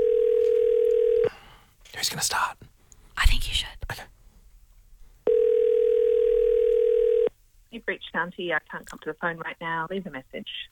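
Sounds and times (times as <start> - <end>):
telephone dial tone: 0.0 - 1.3, 5.3 - 7.3
speech: 2.0 - 2.6, 8.2 - 10.7.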